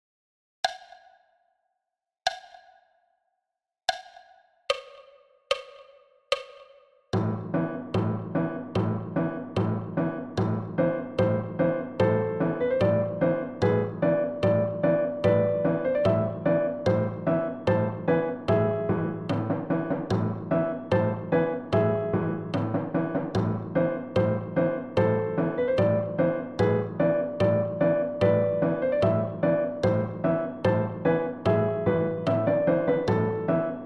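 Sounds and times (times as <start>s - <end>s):
solo piano at 74 BPM: 7.2s - 33.8s.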